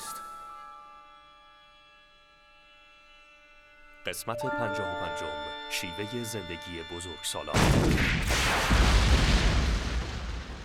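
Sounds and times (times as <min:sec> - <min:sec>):
speech: 0:04.0 - 0:09.3
gunfire shots: 0:07.6 - 0:09.7.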